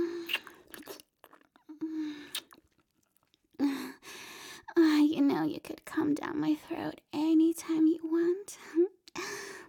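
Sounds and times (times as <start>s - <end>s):
wet slurping mouth sounds: 0.2s - 1.6s, 2.3s - 2.8s
speech: 5.1s - 8.9s.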